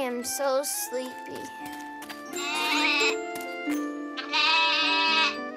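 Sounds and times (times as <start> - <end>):
speech: 0.1 - 1.9
goat bleating: 2.3 - 3.2, 4.2 - 5.4.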